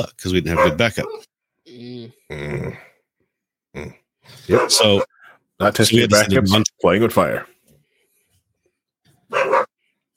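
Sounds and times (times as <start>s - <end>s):
speech: 0.0s - 2.9s, 3.7s - 7.6s
single sharp loud dog bark: 0.5s - 1.2s, 4.4s - 5.3s, 9.3s - 9.8s
faint brief dog yip: 9.3s - 9.7s.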